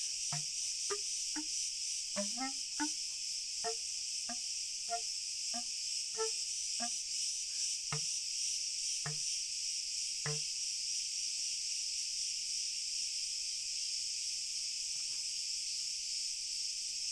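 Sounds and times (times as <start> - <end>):
several crickets in a chorus trilling: 0.0 - 17.1
knocking sounds: 2.2 - 2.5.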